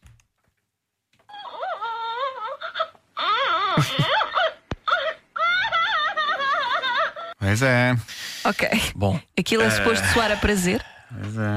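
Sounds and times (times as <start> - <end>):
toy baby doll recorded crying: 1.3 - 7.4
speech: 3.8 - 4.2, 7.5 - 11.5.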